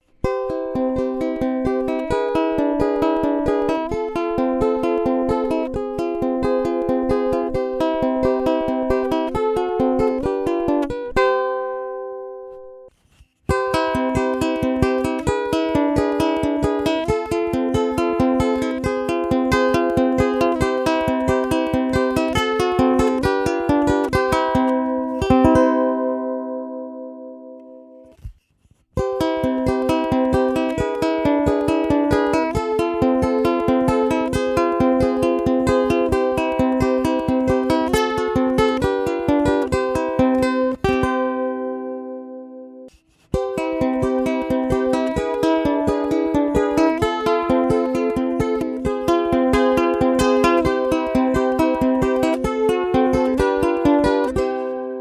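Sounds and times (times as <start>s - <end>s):
clean ukulele: 0.0s - 55.0s.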